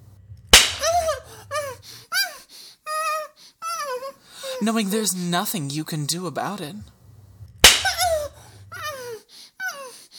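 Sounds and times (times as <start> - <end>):
whip lashing against skin: 0.6 - 1.2, 7.6 - 8.2
short high pained cries and whimpers: 0.7 - 4.6, 7.2 - 10.1
speech: 4.6 - 7.0.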